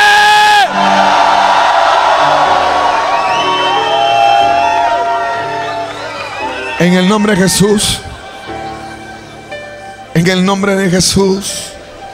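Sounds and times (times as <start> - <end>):
church congregation shouting together: 0.0 - 6.8
speech: 7.2 - 8.1, 10.2 - 11.8.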